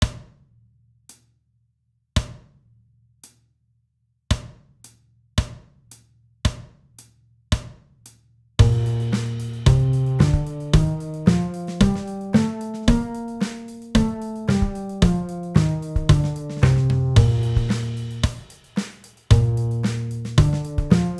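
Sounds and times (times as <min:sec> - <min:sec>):
concert B-flat scales: 0:08.6 - 0:18.2, 0:19.4 - 0:21.1.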